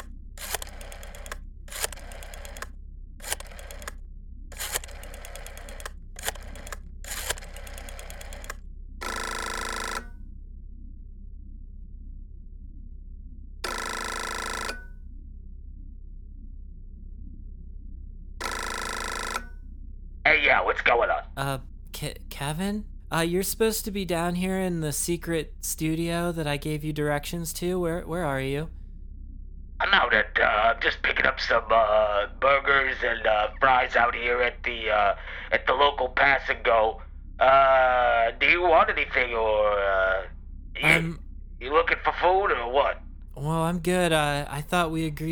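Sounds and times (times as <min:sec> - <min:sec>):
telephone ring tone through the line: 0:00.0 - 0:02.6, 0:03.2 - 0:03.9, 0:04.6 - 0:10.1, 0:13.7 - 0:14.9, 0:18.4 - 0:19.4
rotary phone dial whirring and clicking: 0:00.0 - 0:10.1
speech: 0:20.4 - 0:28.8, 0:30.1 - 0:45.2
voice answering phone: 0:21.4 - 0:28.7, 0:40.8 - 0:41.2, 0:43.4 - 0:45.2.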